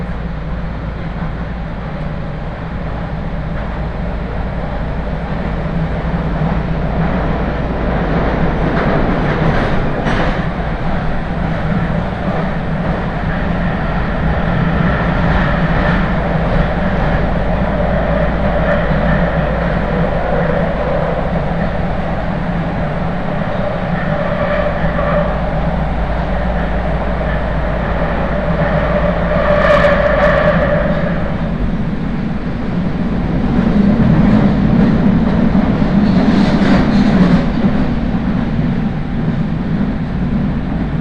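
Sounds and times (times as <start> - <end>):
steady low rumble and hum inside a moving train: 0.0 - 41.0.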